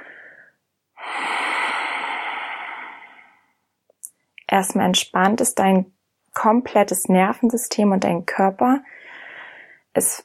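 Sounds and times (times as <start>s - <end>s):
deep belly breathing: 0.0s - 3.7s
speech: 4.5s - 8.9s, 10.0s - 10.2s.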